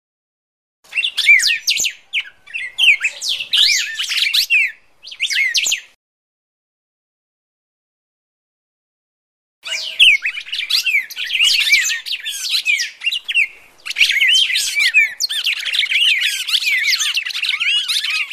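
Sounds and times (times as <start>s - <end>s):
Red-crested Cardinal fighting calls: 0.9s - 5.9s, 9.6s - 18.3s.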